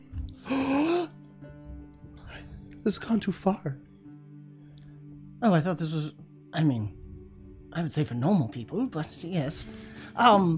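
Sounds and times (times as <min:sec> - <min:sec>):
person gasping theatrically: 0:00.4 - 0:01.1
speech: 0:02.8 - 0:03.9, 0:05.4 - 0:07.0, 0:07.7 - 0:10.5.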